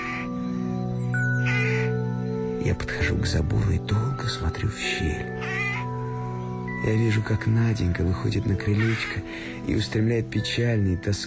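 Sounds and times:
rooks cawing at dusk while settling to roost in early spring: 0.0 - 3.1, 5.2 - 6.7, 8.6 - 9.6
speech: 2.6 - 5.6, 6.8 - 11.2.

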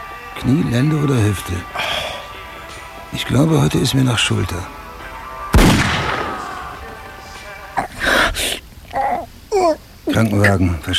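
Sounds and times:
voices: 0.0 - 10.9
speech: 0.4 - 1.8, 3.1 - 4.8, 10.2 - 10.9
gunshot in a radio drama: 5.5 - 6.8.

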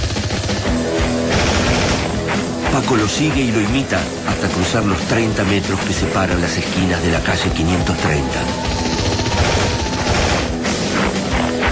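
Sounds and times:
rapid gunfire in a radio drama: 0.0 - 3.0, 8.5 - 11.6
speech: 2.9 - 8.9.

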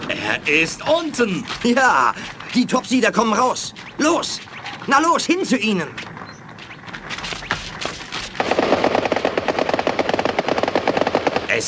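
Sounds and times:
speech: 0.3 - 6.1
rapid automatic gunfire in a science-fiction firefight: 6.1 - 11.6.

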